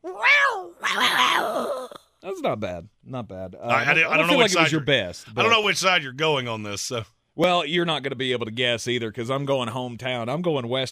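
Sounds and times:
person imitating a cat meow and growling yowl: 0.0 - 2.0
speech: 1.0 - 10.8.

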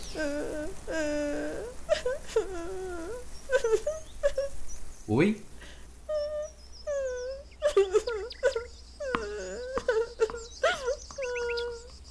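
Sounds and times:
dog whimpering and crying with high drawn-out whines: 0.0 - 4.6, 6.1 - 12.0
speech: 0.2 - 1.4, 5.1 - 5.5
dog yelping: 6.1 - 11.9.

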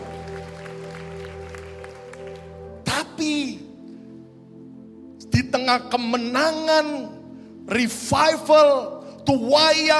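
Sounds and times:
audience clapping: 0.0 - 2.8
sustained droning keyboard chord: 0.0 - 9.9
speech: 3.2 - 3.7, 5.5 - 7.1, 7.7 - 9.9.

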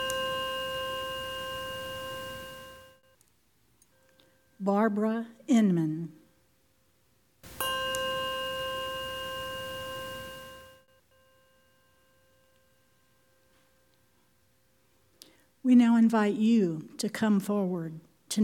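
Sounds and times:
single bell struck in a quiet room: 0.0 - 3.1, 7.4 - 13.9
speech: 4.6 - 6.2, 15.7 - 18.4.

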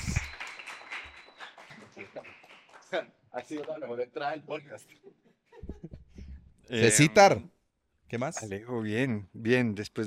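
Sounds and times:
small group applauding: 0.0 - 3.8
speech: 2.9 - 5.2, 6.7 - 10.0.

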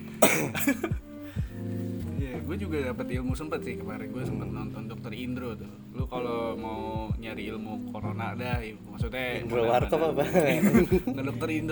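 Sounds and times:
person coughing while holding back laughter: 0.2 - 1.0
speech: 0.2 - 1.0, 2.5 - 11.7
strained wavering choked back laughter: 10.2 - 11.2.

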